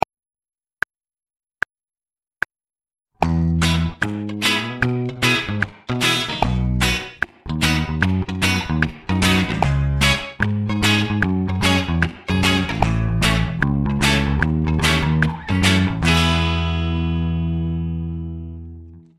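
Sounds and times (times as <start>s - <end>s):
reggae rhythm improvisation: 3.2s - 18.8s.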